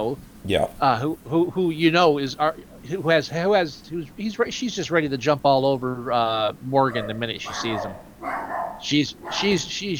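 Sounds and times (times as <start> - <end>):
speech: 0.0 - 9.9
dog barking: 6.8 - 9.8.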